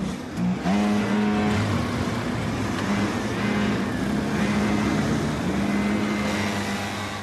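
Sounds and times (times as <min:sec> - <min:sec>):
racing cars driven on a track in a cadet race: 0:00.0 - 0:07.2.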